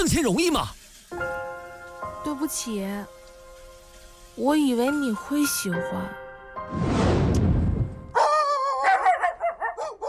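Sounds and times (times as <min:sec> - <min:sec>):
speech: 0:00.0 - 0:01.3, 0:02.2 - 0:03.2, 0:04.4 - 0:06.9
rough rushing noise: 0:06.6 - 0:08.1
dog barking with quick high yelps: 0:08.2 - 0:10.0.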